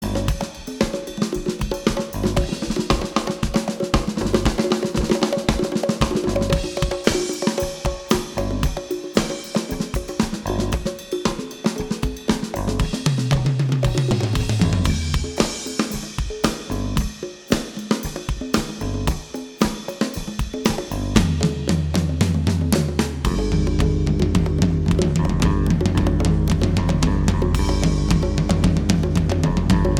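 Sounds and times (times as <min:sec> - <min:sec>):
bass: 0:00.0 - 0:00.6, 0:01.4 - 0:03.0, 0:04.1 - 0:04.6, 0:06.0 - 0:06.8, 0:08.1 - 0:08.9, 0:09.7 - 0:11.0, 0:12.4 - 0:17.2, 0:18.6 - 0:19.3, 0:20.7 - 0:29.9
drums: 0:00.0 - 0:29.9.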